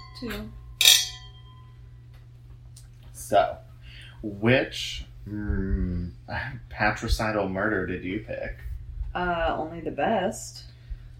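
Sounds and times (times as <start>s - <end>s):
wine glasses clinking in a toast: 0.0s - 1.8s
low hum: 0.0s - 11.1s
speech: 0.2s - 0.6s, 3.3s - 3.6s, 4.2s - 10.7s.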